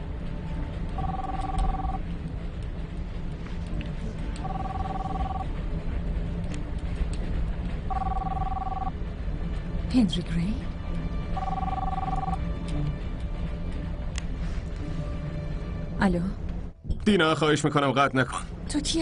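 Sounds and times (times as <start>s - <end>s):
constant low rumble: 0.0s - 17.0s
electronic telephone ringing during a call: 1.0s - 2.0s, 4.4s - 5.5s, 7.9s - 8.9s, 11.4s - 12.4s
speech: 10.0s - 10.7s, 16.0s - 16.4s, 17.1s - 19.0s.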